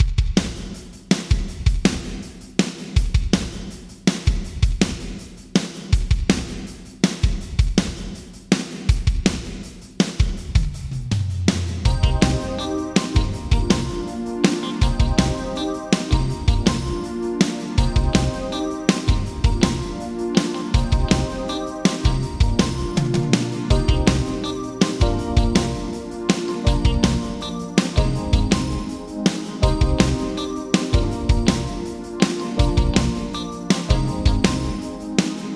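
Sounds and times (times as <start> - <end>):
Yamaha ProR3 drums in a new hall: 0.0 - 35.5.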